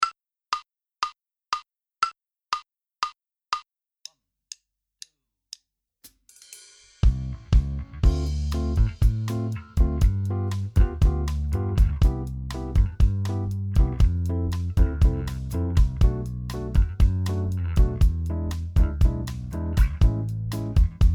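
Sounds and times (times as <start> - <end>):
backing track without guitar: 7.6 - 21.1.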